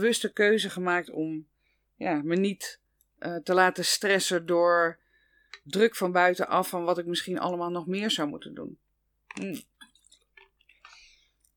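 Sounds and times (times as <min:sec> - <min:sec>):
speech: 0:00.0 - 0:05.0, 0:05.6 - 0:09.7
person sipping water with soft wet slurps: 0:09.3 - 0:11.5.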